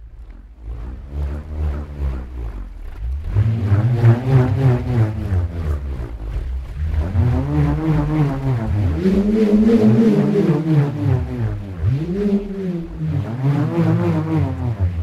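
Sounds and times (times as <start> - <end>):
pitched whirring drone of vibrating air: 0.0 - 15.0.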